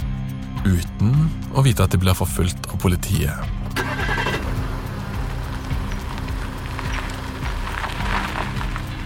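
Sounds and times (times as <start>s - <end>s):
speech: 0.6s - 3.6s
road noise: 3.2s - 9.0s
car engine rumbling with rising revs: 3.4s - 9.0s.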